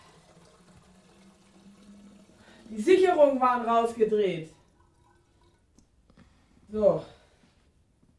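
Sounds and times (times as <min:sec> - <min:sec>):
water running from a tap to fill a kettle for tea: 0:00.0 - 0:06.0
speech: 0:02.7 - 0:04.6, 0:06.7 - 0:07.2.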